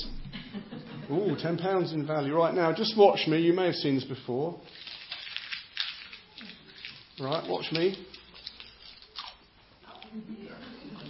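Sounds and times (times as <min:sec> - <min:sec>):
speech: 0:01.1 - 0:04.8, 0:07.2 - 0:08.2
paper banknote being crumpled and chewed: 0:04.7 - 0:10.1, 0:10.9 - 0:11.0.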